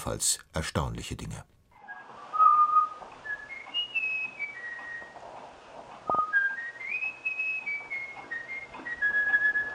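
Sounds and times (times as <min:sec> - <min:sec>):
speech: 0:00.0 - 0:01.6
bullfinch whistling a human-taught melody: 0:01.8 - 0:05.3, 0:06.0 - 0:09.7.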